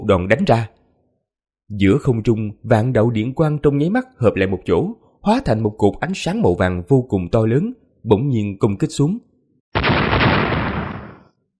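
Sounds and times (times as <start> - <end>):
speech: 0.1 - 0.8, 1.7 - 10.0
huge explosion sound effect: 9.8 - 11.3.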